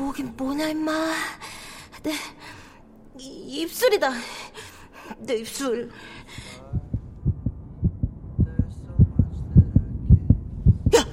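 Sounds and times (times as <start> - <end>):
speech: 0.1 - 2.6, 3.2 - 6.4
pounding heartbeat sound effect: 6.6 - 11.1.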